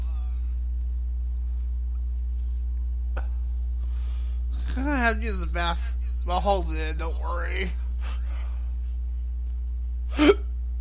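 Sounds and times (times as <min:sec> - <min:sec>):
low steady hum: 0:00.0 - 0:10.8
speech: 0:04.8 - 0:07.9, 0:10.2 - 0:10.4
person hiccuping: 0:10.1 - 0:10.6.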